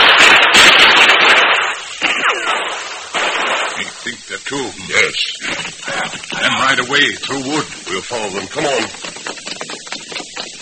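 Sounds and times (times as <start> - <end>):
gunshots exchanged in an ambush among boulders: 0.0 - 4.2
speech: 6.9 - 9.1.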